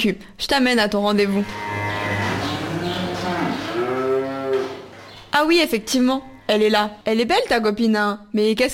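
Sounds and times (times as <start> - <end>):
speech: 0.0 - 1.9, 5.4 - 8.7
Montbéliarde cow mooing: 1.4 - 5.3, 5.9 - 7.0.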